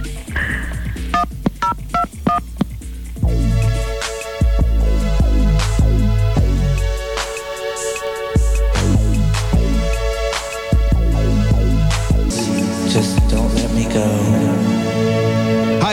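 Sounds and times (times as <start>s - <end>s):
loud burst of music: 0.0s - 15.9s
short crisp touch-tone phone keypad beeps: 1.0s - 2.7s.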